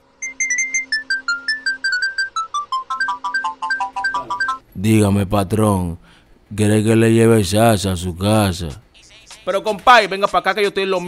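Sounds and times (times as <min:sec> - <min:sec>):
phone ringtone of short bright electronic beeps during an outgoing call: 0:00.2 - 0:04.6
speech: 0:04.8 - 0:08.8, 0:09.5 - 0:11.0.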